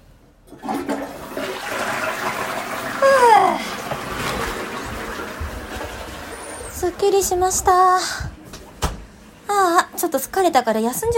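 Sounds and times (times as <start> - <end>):
toilet flushing: 0.4 - 8.1
speech: 7.0 - 8.3, 10.1 - 11.1.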